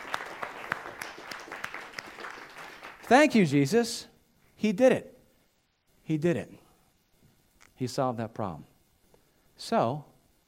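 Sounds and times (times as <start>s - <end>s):
crowd clapping: 0.0s - 3.2s
speech: 3.1s - 5.1s, 6.1s - 6.6s, 7.8s - 8.7s, 9.6s - 10.1s.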